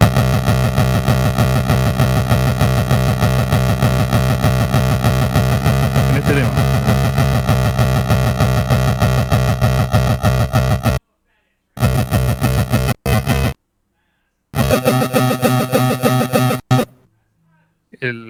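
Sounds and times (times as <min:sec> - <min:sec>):
buzzy chiptune pulse-wave synth tones from a game console's pulse channel through an effects pedal: 0:00.0 - 0:11.0, 0:11.8 - 0:13.6, 0:14.6 - 0:16.9.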